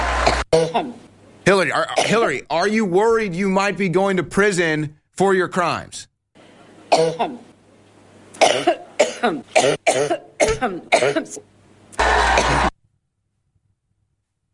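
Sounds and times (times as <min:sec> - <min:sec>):
harsh hacking coughing fit: 0:00.3 - 0:01.0, 0:02.0 - 0:02.3, 0:06.9 - 0:07.5, 0:08.4 - 0:11.4
speech: 0:00.7 - 0:06.1, 0:06.9 - 0:07.5, 0:08.4 - 0:12.6.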